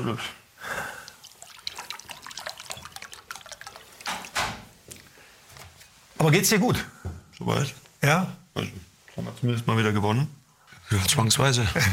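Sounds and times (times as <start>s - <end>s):
speech: 0.0s - 0.4s, 6.2s - 11.9s
water poured into a glass for a guest at an arena: 0.7s - 4.6s.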